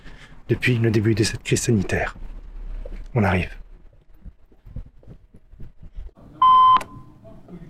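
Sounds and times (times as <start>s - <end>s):
low noise: 0.0s - 7.6s
speech: 0.5s - 2.2s, 3.1s - 3.6s
intercom call tone beeping at a building entrance: 6.4s - 7.2s.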